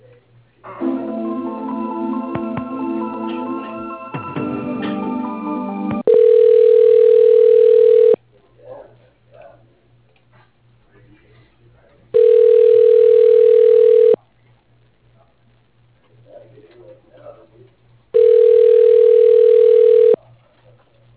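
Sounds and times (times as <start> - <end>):
telephone line tones while a call is transferred to voicemail: 6.0 - 8.2, 12.2 - 14.2, 18.2 - 20.2.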